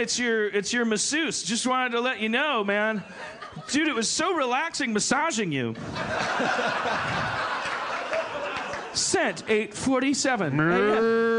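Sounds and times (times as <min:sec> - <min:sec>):
speech: 0:00.0 - 0:07.5, 0:09.0 - 0:11.3
laughter: 0:03.0 - 0:04.1, 0:05.7 - 0:09.6
cow mooing: 0:10.6 - 0:11.3.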